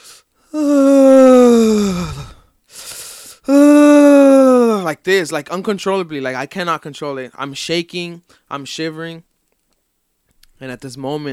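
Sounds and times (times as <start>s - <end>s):
breathy inhale: 0.0s - 0.6s, 2.0s - 3.5s
person yawning: 0.5s - 2.5s, 3.5s - 4.9s
speech: 4.9s - 9.3s, 10.6s - 11.3s.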